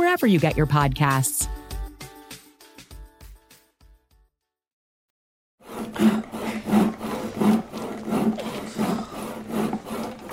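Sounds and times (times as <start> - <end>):
speech: 0.2 - 1.7
hand saw cutting wood: 5.6 - 10.3.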